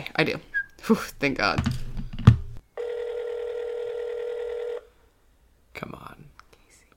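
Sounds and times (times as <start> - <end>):
speech: 0.2 - 1.9
outgoing phone call ringing tone: 2.8 - 4.9.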